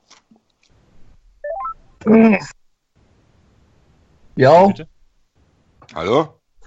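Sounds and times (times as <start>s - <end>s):
outgoing call electronic dialing beeps: 1.4s - 1.8s
speech: 2.0s - 2.6s, 4.4s - 4.9s, 6.0s - 6.4s.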